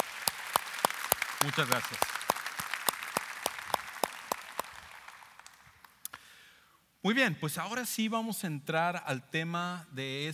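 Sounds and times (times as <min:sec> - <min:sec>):
audience applauding at a church service: 0:00.0 - 0:06.0
speech: 0:01.4 - 0:02.2, 0:07.0 - 0:10.3.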